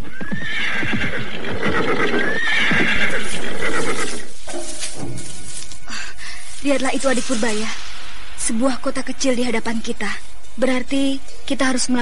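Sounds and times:
tired horse neighing: 0.0 - 4.3
horse hooves clopping: 0.0 - 7.0
speech: 6.7 - 12.0.

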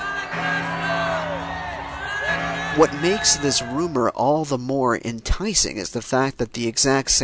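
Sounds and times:
crowd cheering and whooping celebrating a victory: 0.0 - 4.0
speech: 2.8 - 7.2.

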